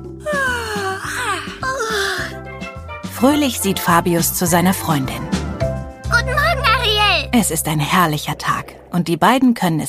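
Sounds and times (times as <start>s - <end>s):
soft music: 0.0s - 9.8s
person yawning on waking up in bed: 0.2s - 2.4s
speech: 3.2s - 5.4s, 7.3s - 9.8s.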